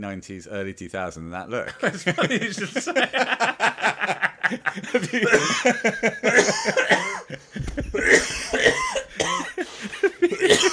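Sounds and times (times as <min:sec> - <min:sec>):
speech: 0:00.0 - 0:08.8
laughter: 0:01.6 - 0:10.7
person with whooping cough coughing: 0:05.1 - 0:10.7.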